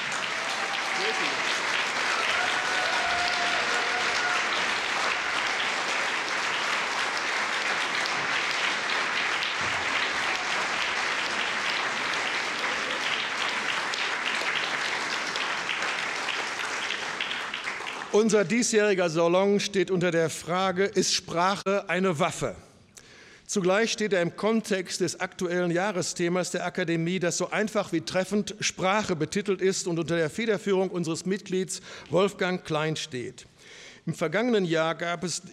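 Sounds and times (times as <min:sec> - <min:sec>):
sustained applause from a large audience at an academy salon: 0:00.0 - 0:18.6
speech: 0:01.1 - 0:01.6, 0:18.2 - 0:22.7, 0:23.5 - 0:35.5.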